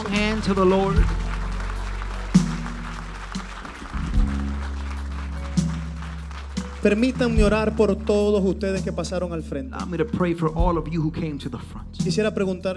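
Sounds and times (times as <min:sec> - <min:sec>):
audience applauding: 0:00.0 - 0:08.5
sustained keyboard chords: 0:00.0 - 0:12.7
speech: 0:00.4 - 0:01.2, 0:06.8 - 0:12.7.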